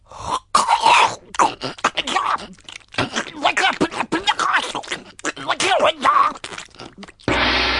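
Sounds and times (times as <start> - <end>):
person biting into and chewing a sandwich: 0.1 - 7.3
throaty grunts: 0.2 - 5.7.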